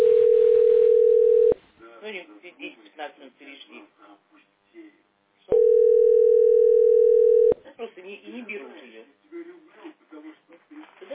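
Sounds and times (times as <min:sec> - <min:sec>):
telephone ringing tone on an unanswered call: 0:00.0 - 0:01.6, 0:05.5 - 0:07.6.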